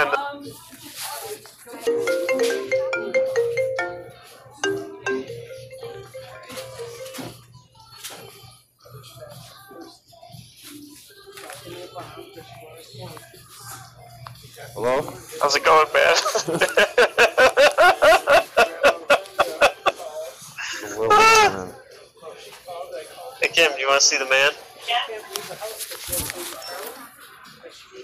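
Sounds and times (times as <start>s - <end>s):
faint voices: 0.0s - 28.0s
speech: 0.4s - 0.8s, 16.4s - 16.8s
WhatsApp video call ringtone: 1.9s - 7.4s
laughter: 16.1s - 21.5s.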